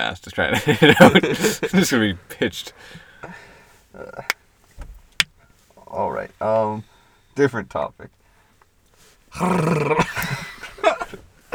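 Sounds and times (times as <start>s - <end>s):
speech: 0.0s - 4.4s, 5.9s - 8.2s, 9.3s - 10.4s
laughter: 0.5s - 2.1s, 9.4s - 11.5s
short vocal sounds: 9.3s - 10.4s
person voicing a growly rawr roar imitation: 9.4s - 10.1s.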